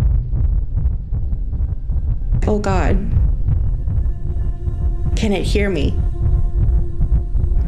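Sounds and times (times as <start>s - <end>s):
loud steady heartbeat sound effect: 0.0s - 7.6s
speech: 2.5s - 3.2s, 5.2s - 6.0s.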